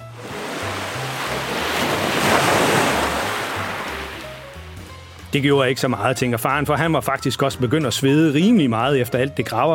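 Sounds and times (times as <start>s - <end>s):
huge ocean wave crashing onto the beach: 0.0s - 4.5s
speech: 5.3s - 9.7s.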